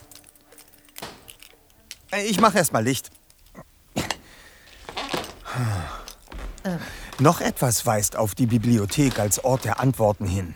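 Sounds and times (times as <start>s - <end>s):
bunch of keys jangling: 0.0s - 8.1s
speech: 2.1s - 3.2s, 7.2s - 10.5s.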